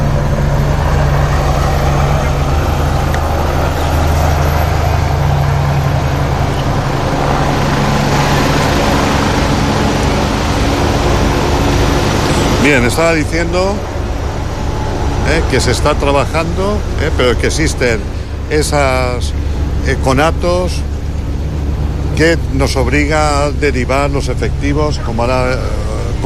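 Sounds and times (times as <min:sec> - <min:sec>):
helicopter flying overhead: 0:00.0 - 0:26.2
speech: 0:12.7 - 0:13.9, 0:15.3 - 0:20.9, 0:22.2 - 0:26.2.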